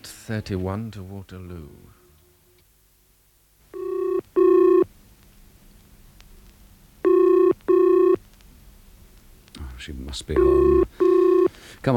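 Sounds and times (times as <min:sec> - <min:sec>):
faint low hum: 0:00.0 - 0:11.9
speech: 0:00.3 - 0:02.0, 0:09.8 - 0:10.8
telephone ringing in double bursts: 0:03.8 - 0:04.9, 0:07.0 - 0:08.2, 0:10.4 - 0:11.5.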